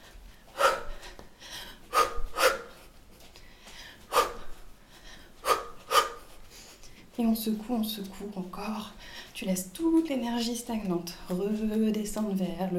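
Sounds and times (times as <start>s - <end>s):
heavy gasping breaths as if after running: 0.0s - 7.2s, 8.9s - 9.4s
speech: 7.2s - 12.7s.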